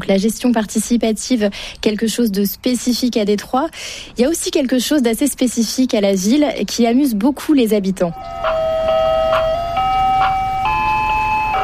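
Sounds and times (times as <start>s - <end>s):
speech: 0.0s - 8.8s
ice cream truck jingle in Detroit: 8.1s - 11.6s
light rhythmic chimes: 8.2s - 11.6s.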